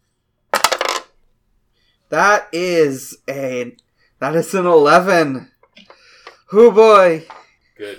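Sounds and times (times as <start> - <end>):
dice rolled for a tabletop role-playing game rattling: 0.5 - 1.2
speech: 2.1 - 5.9, 6.5 - 7.9.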